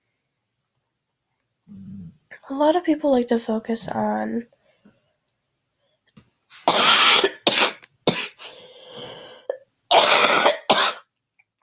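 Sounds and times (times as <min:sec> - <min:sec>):
raspy throat clearing: 0:01.7 - 0:02.1
speech: 0:02.5 - 0:04.6
person coughing: 0:06.7 - 0:08.6, 0:09.5 - 0:11.0.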